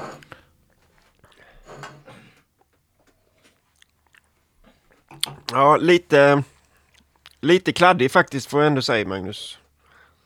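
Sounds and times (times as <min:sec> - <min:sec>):
chewing and biting on a cheese sandwich: 0:00.6 - 0:01.6, 0:02.3 - 0:05.6, 0:06.5 - 0:07.4
speech: 0:05.5 - 0:06.5, 0:07.4 - 0:09.6.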